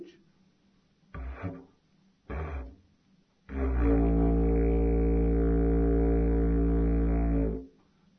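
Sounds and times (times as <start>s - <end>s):
didgeridoo: 1.1s - 1.7s, 2.3s - 2.9s, 3.5s - 7.7s.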